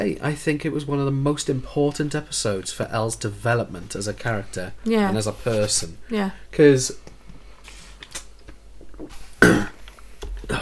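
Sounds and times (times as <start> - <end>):
speech: 0.0 - 7.0
person coughing: 9.4 - 9.8.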